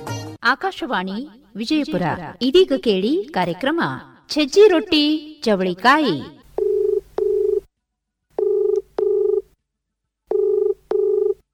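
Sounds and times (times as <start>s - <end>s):
speech: 0.4s - 6.4s
telephone ringback tone beeps in pairs: 6.6s - 7.7s, 8.4s - 9.4s, 10.3s - 11.4s.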